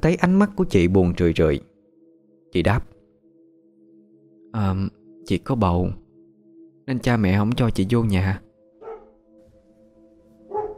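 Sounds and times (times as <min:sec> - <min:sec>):
speech: 0:00.0 - 0:01.7, 0:02.5 - 0:02.9, 0:04.5 - 0:06.0, 0:06.9 - 0:08.4
dog barking in the countryside: 0:08.8 - 0:09.2, 0:10.5 - 0:10.7.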